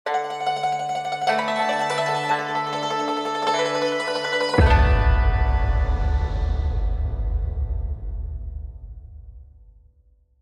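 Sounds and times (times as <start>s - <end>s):
strings: 0.1s - 8.9s
deep boom: 4.5s - 10.3s.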